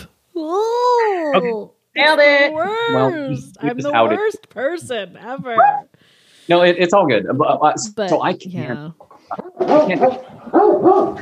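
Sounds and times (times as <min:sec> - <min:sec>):
speech: 0:00.4 - 0:00.6, 0:01.4 - 0:11.2
dog barking with yips and whining barks: 0:05.6 - 0:05.9, 0:09.4 - 0:11.2.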